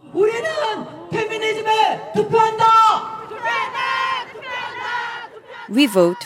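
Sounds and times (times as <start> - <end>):
large crowd chanting in unison at a rally celebrating International Women's Day in Seoul: 0.0 - 6.2
speech: 5.8 - 6.2.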